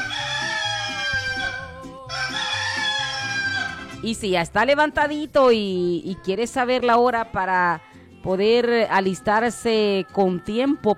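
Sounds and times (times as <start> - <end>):
rooster crowing: 0.0 - 4.0
speech: 4.0 - 10.9.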